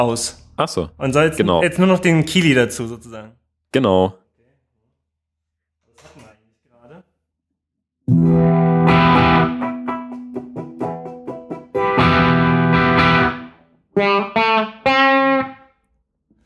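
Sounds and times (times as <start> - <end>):
speech: 0.0 - 4.2
distorted electric guitar playing dry sustained chords and choppy stabs: 8.1 - 15.7.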